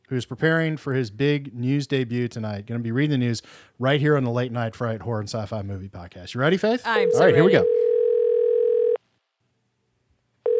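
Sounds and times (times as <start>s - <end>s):
speech: 0.1s - 7.9s
telephone ringback tone on an outgoing call: 7.0s - 9.0s.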